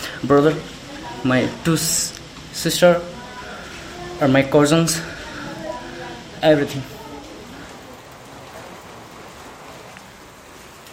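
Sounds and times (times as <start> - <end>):
steady rain pattering on surfaces: 0.0 - 10.9
speech: 0.2 - 3.2, 4.2 - 5.1, 6.4 - 6.9.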